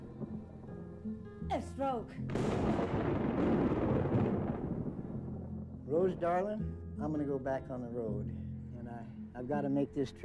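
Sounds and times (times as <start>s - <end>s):
speech: 1.5s - 3.8s, 5.9s - 10.2s
thunder rumbling during a lightning storm: 2.3s - 6.6s.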